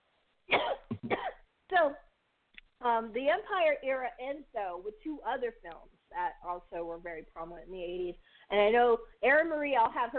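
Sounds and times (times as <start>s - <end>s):
person coughing harshly: 0.5s - 1.4s
speech: 1.8s - 2.0s, 2.8s - 10.1s.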